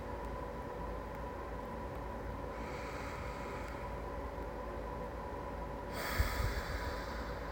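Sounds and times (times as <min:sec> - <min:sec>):
low hiss: 0:00.0 - 0:07.5
slow deep breathing during a guided relaxation exercise: 0:02.5 - 0:04.0, 0:05.9 - 0:07.5.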